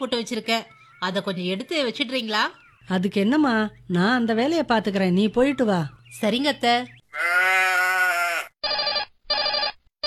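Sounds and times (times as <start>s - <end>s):
speech: 0.0s - 7.6s
electronic phone ringtone inside a house: 8.6s - 10.0s.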